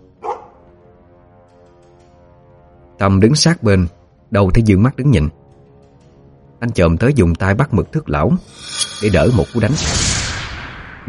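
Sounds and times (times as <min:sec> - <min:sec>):
dog barking: 0:00.2 - 0:00.6
speech: 0:03.0 - 0:05.4, 0:06.6 - 0:10.1.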